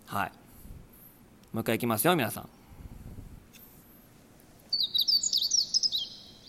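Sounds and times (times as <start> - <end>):
speech: 0.1 - 0.4, 1.5 - 2.6
meadow bunting singing: 4.7 - 6.4.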